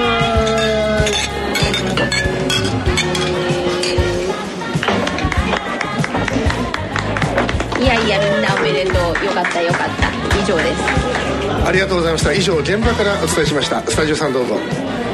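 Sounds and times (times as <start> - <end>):
glasses clinking during a toast: 0.0 - 4.4
crowd chatter at a lively gathering: 0.0 - 15.1
speech: 9.3 - 15.0.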